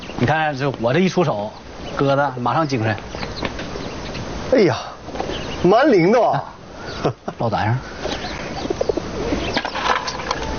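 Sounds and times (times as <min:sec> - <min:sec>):
speech: 0:00.2 - 0:03.2, 0:04.5 - 0:04.9, 0:05.6 - 0:08.0
treated ill pigeon cooing: 0:07.8 - 0:10.5.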